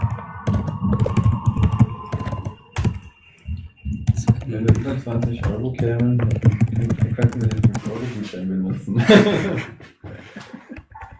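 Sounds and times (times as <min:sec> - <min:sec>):
computer keyboard typing and clicking: 0:00.0 - 0:08.1
speech: 0:04.5 - 0:10.0
laughter: 0:08.7 - 0:10.9.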